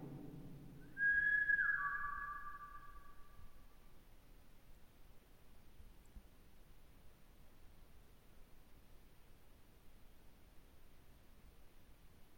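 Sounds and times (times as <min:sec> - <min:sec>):
person whistling a single clear tone: 0:01.0 - 0:02.6.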